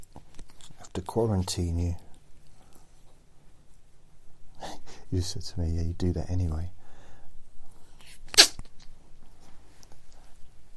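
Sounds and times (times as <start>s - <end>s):
speech: 1.0s - 2.0s, 5.1s - 6.8s
small sneeze: 8.0s - 8.9s.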